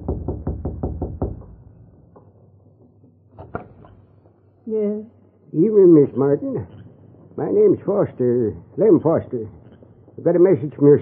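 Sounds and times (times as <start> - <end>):
man knocking on the wooden door of a home: 0.0 - 2.9
speech: 4.7 - 6.8, 7.4 - 9.6, 10.2 - 11.0.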